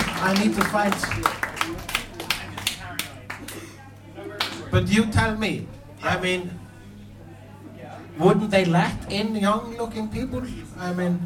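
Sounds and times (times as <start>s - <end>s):
slow soft hand claps: 0.0s - 3.7s
low murmur: 0.0s - 11.2s
speech: 0.2s - 1.9s, 4.7s - 6.6s, 8.2s - 11.2s.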